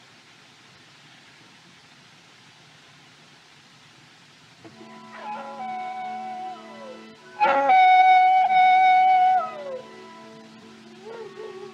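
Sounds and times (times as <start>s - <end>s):
coyote howling: 5.0s - 11.7s.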